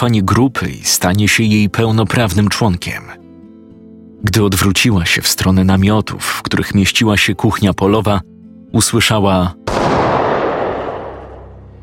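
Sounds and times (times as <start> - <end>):
speech: 0.0 - 3.2, 4.2 - 10.0
loud burst of gunfire: 9.7 - 11.6.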